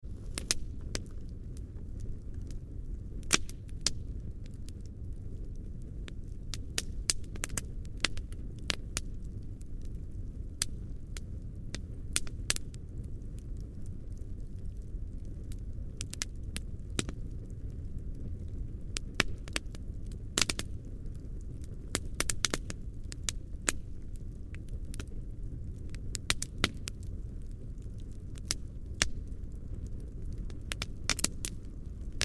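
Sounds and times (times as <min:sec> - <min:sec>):
campfire medium crackles and snaps: 0:00.0 - 0:32.2.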